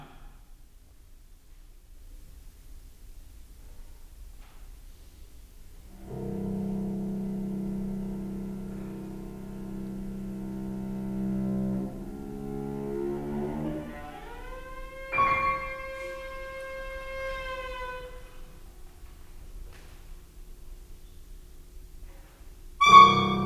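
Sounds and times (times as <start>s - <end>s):
piano trio playing: 5.9s - 18.9s, 22.8s - 23.4s.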